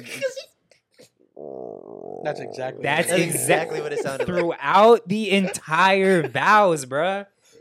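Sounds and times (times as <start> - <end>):
person imitating a hungry stomach growling with their voice: 1.4 - 3.9
speech: 2.2 - 7.3
laughter: 2.8 - 6.8.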